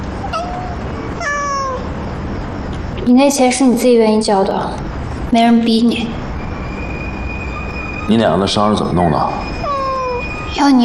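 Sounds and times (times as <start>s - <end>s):
cat meowing: 0.2s - 2.0s, 9.4s - 10.8s
speech: 3.1s - 6.2s, 8.1s - 9.6s, 10.6s - 10.8s.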